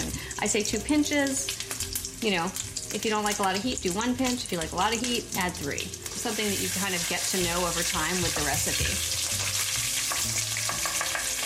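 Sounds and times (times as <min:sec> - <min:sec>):
tomato paste cooking and caramelizing in a pan: 0:00.0 - 0:11.4
speech: 0:00.4 - 0:01.6, 0:02.2 - 0:09.2.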